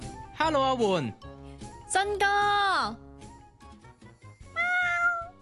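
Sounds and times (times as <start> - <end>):
speech: 0.5 - 1.3, 1.9 - 3.1
cat meowing: 4.5 - 5.3.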